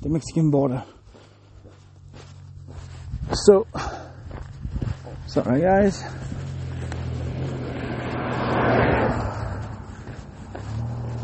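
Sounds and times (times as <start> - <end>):
speech: 0.0 - 1.0, 3.3 - 4.0, 5.3 - 6.3
steady low rumble of traffic: 0.0 - 11.2
car passing by on a road in the morning: 5.1 - 11.2.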